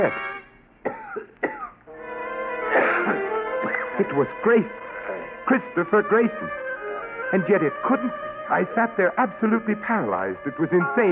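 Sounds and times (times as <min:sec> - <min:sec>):
speech: 0:00.0 - 0:00.3, 0:04.0 - 0:04.8, 0:05.5 - 0:06.6, 0:07.3 - 0:11.1
man coughing: 0:00.9 - 0:01.8, 0:02.7 - 0:04.0.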